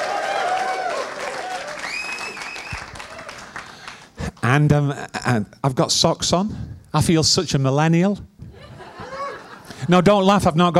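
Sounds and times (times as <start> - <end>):
room full of people clapping: 0.0 - 4.5
whistle-like tones: 1.9 - 2.9
speech: 4.5 - 8.3, 9.9 - 10.7
laughter: 8.5 - 10.0.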